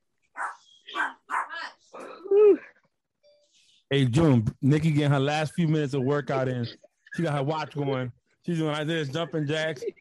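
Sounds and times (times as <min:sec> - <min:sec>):
dog barking: 0:00.4 - 0:01.7
speech: 0:03.9 - 0:09.9.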